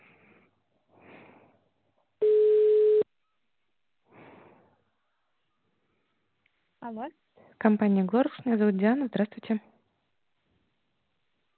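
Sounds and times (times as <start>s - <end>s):
ringback tone for an outgoing phone call: 2.2s - 3.0s
speech: 6.8s - 9.7s.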